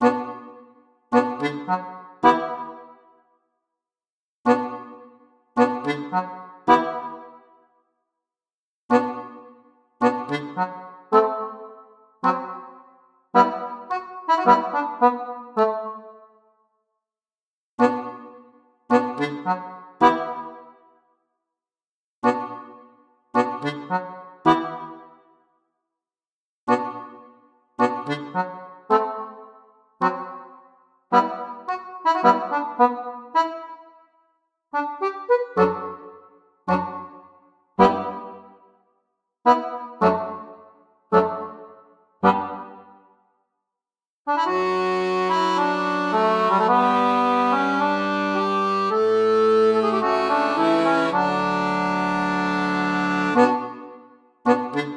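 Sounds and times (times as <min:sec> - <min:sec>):
quiet nostalgic accordion solo: 0:00.0 - 0:03.0, 0:04.5 - 0:07.4, 0:08.9 - 0:16.2, 0:17.8 - 0:20.6, 0:22.2 - 0:22.8, 0:23.4 - 0:25.1, 0:26.7 - 0:33.9, 0:34.8 - 0:37.2, 0:37.8 - 0:38.6, 0:39.5 - 0:43.0, 0:44.3 - 0:54.9.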